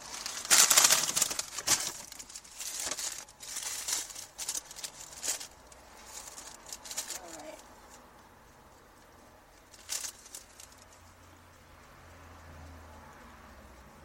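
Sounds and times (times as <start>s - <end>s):
paper hamburger wrapper crinkling and rustling: 0.0s - 7.6s, 9.8s - 10.8s.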